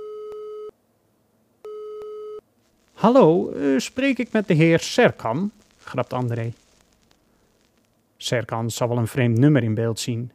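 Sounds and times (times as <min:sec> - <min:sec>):
telephone ringing tone on the line of an old rotary-dial telephone: 0:00.0 - 0:00.7, 0:01.7 - 0:02.4
faint telephone line hiss: 0:02.4 - 0:10.3
speech: 0:03.0 - 0:06.6, 0:08.2 - 0:10.3.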